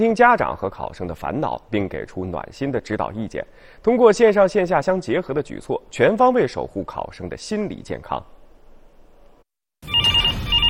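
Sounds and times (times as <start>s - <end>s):
speech: 0.0s - 8.4s
telephone ringing on a youth mental-health counseling hotline: 9.8s - 10.6s.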